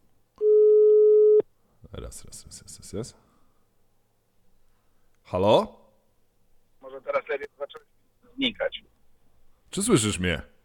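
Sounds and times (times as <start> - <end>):
phone call connecting tone: 0.4 - 1.4
speech: 2.1 - 3.2, 5.3 - 5.8, 7.7 - 8.9, 9.7 - 10.5.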